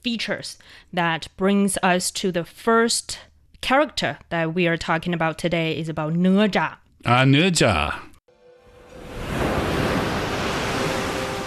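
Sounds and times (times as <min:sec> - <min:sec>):
speech: 0:00.0 - 0:08.1
ocean waves: 0:08.3 - 0:11.4.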